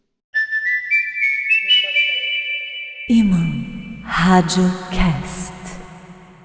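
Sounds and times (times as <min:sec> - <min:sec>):
person whistling a melody: 0:00.4 - 0:02.4
speech: 0:03.1 - 0:05.5.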